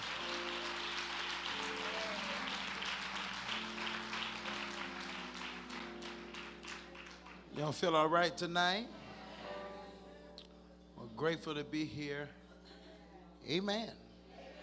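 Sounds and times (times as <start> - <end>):
audience clapping during a worship service: 0.0 - 7.9
low sustained organ-like hum: 0.0 - 14.6
speech: 7.6 - 9.0, 11.2 - 12.4, 13.4 - 14.0.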